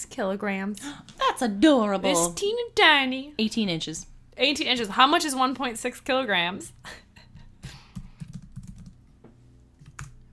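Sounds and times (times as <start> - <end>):
speech: 0.2 - 7.0
rapid typing on a computer keyboard: 8.0 - 9.0, 9.8 - 10.2.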